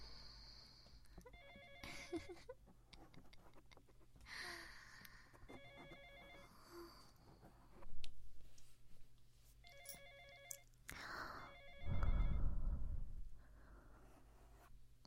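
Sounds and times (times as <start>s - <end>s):
electronic phone ringtone chiming: 1.2s - 2.5s, 5.5s - 6.6s, 9.6s - 10.7s, 11.4s - 12.4s
low thump: 11.9s - 13.3s.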